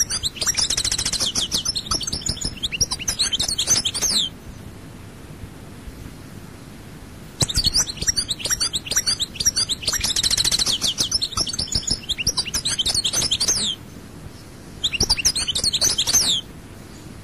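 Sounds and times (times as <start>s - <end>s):
European goldfinch singing: 0.0s - 4.4s, 7.4s - 13.8s, 14.8s - 16.5s.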